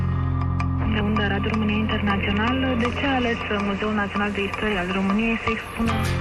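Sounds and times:
radio theme jingle: 0.7 - 6.1
speech: 1.0 - 6.1.

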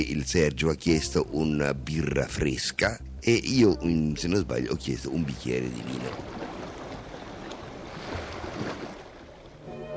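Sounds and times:
speech: 0.0 - 6.4
steady rushing sea water: 5.0 - 9.9
small dinghy knocks and splashes being launched into the sea: 5.6 - 9.6.

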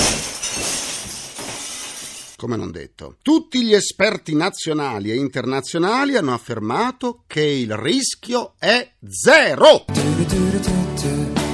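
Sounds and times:
glass shards tinkling and scattering: 0.0 - 2.4
glass shattering: 0.0 - 2.4
speech: 2.4 - 11.5.

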